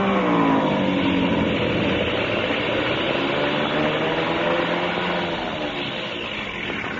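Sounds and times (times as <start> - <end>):
airplane engine sputtering while coming in to land: 0.0 - 6.9.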